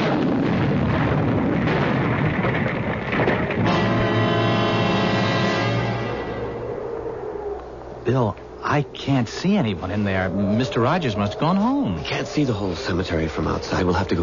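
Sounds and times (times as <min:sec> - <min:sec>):
loud explosion: 0:00.0 - 0:06.6
speech: 0:08.1 - 0:14.2.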